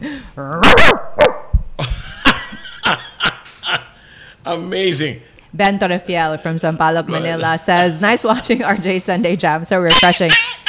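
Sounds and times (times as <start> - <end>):
speech: 0.0 - 1.0, 4.5 - 10.5
dog barking: 0.6 - 1.5, 9.9 - 10.6
dog yips and huffs: 9.9 - 10.6.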